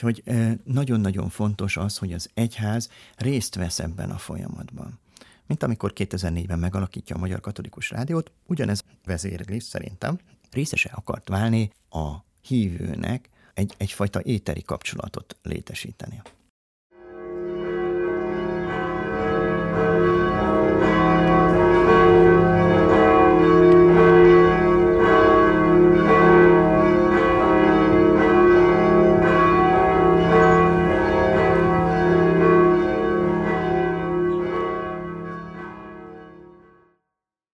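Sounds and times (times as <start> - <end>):
speech: 0.0 - 16.4
university church bell ringing: 17.0 - 36.9.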